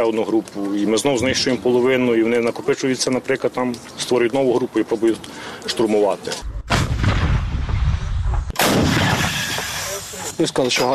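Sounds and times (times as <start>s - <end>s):
speech: 0.0s - 6.6s, 10.4s - 10.9s
heavy artillery gun firing a shell: 6.4s - 9.9s.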